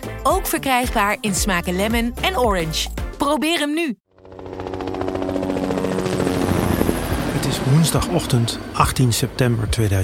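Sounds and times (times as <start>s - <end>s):
speech: 0.2s - 4.0s, 7.8s - 10.0s
trauma helicopter rotor chop taking off from a hospital in Amsterdam: 4.1s - 10.0s.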